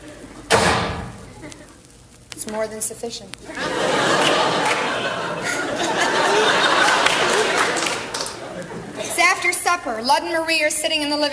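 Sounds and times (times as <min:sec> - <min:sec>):
door slamming shut: 0:00.5 - 0:01.2
speech: 0:02.5 - 0:03.9, 0:09.7 - 0:11.3
laughter: 0:03.4 - 0:09.3.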